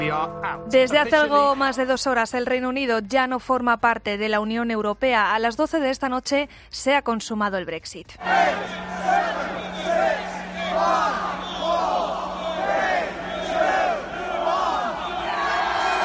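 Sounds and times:
speech: 0.1 - 9.4, 10.8 - 11.9
crowd of thousands counting down: 8.2 - 16.0.

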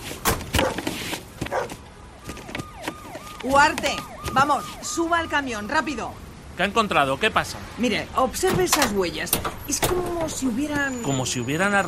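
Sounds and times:
dogs barking: 0.6 - 1.8
speech: 3.4 - 11.8.

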